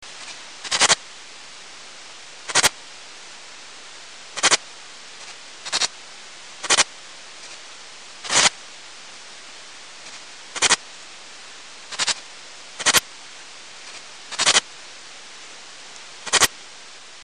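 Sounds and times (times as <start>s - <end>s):
Pholidoptera griseoaptera bush cricket chirping: 0.2s - 1.1s, 2.4s - 3.2s, 4.3s - 15.1s, 16.2s - 16.6s.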